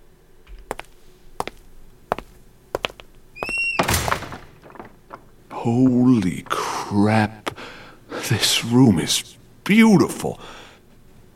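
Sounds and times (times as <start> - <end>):
castle door creak: 3.4 - 5.2
heavy castle doors thunking: 3.4 - 6.8
heavy castle doors scraping as they swing: 3.4 - 7.7
speech: 5.6 - 7.5, 8.3 - 10.6.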